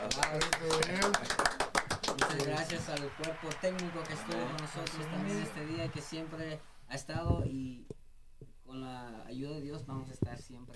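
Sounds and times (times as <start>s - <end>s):
applause: 0.0s - 6.6s
speech: 0.2s - 1.4s, 2.3s - 8.0s, 8.8s - 10.7s.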